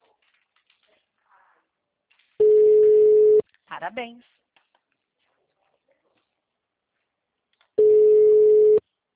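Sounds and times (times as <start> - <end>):
telephone ringing tone from an unanswered outgoing call: 2.4 - 3.4, 7.8 - 8.8
speech: 3.8 - 4.4.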